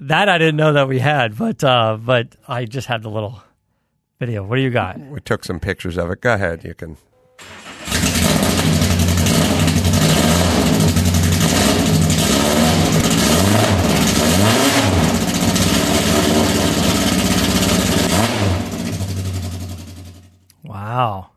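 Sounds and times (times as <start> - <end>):
speech: 0.0 - 3.5, 4.2 - 8.3, 20.9 - 21.3
510 car engine starting, idling and revving past 2,500: 7.4 - 20.3.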